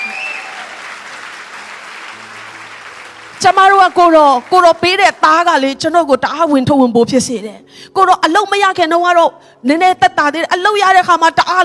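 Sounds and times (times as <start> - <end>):
church congregation clapping hands in praise during a sermon: 0.0 - 5.2
speech: 3.4 - 11.6.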